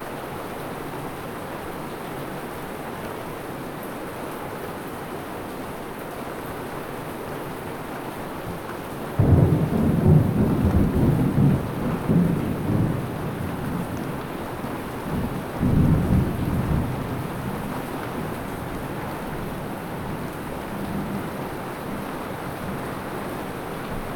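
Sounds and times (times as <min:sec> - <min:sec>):
rain: 0:00.0 - 0:24.1
thunder: 0:09.2 - 0:17.7.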